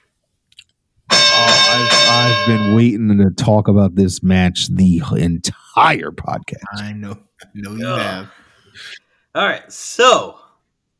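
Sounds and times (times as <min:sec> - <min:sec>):
bell ringing with a sharp metallic strike: 0:01.1 - 0:03.0
speech: 0:01.8 - 0:10.4.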